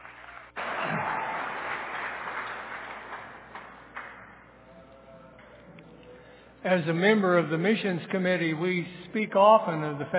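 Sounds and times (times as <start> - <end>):
congregation applauding: 0.0 - 4.7
speech: 6.6 - 10.1.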